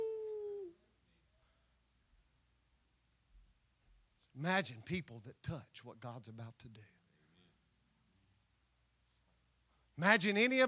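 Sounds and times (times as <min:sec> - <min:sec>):
person imitating a fox or coyote howl: 0:00.0 - 0:00.8
speech: 0:04.4 - 0:07.0, 0:10.0 - 0:10.6.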